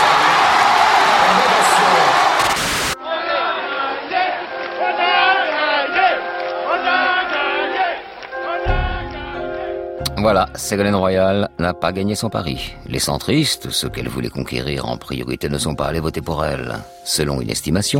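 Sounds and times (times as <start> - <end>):
supporters cheering an election result: 0.0 - 9.9
supporters shouting: 0.0 - 9.9
speech: 10.2 - 17.9.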